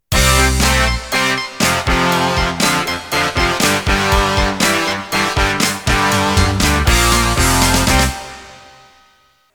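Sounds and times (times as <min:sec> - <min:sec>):
rock music intro: 0:00.1 - 0:09.0.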